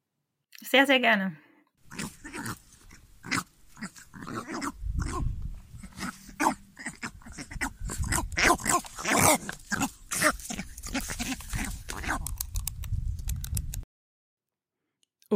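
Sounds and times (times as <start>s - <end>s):
speech: 0.7s - 1.4s
northern bald ibis croaking and grunting: 1.8s - 12.6s.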